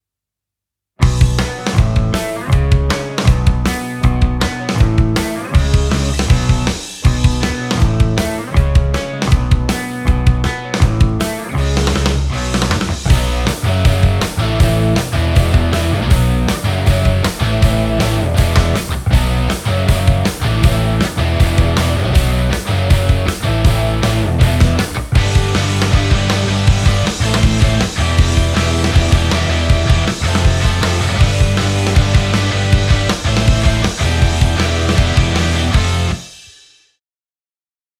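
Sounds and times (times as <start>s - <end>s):
punk music: 1.0s - 36.6s.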